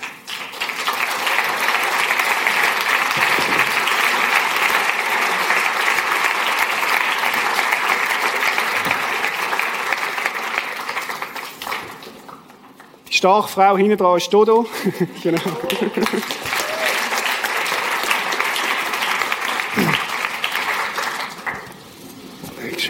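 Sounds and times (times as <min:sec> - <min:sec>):
audience clapping to welcome a guest: 0:00.0 - 0:13.0, 0:15.2 - 0:22.0
speech: 0:13.2 - 0:16.5
laughter: 0:14.7 - 0:16.8.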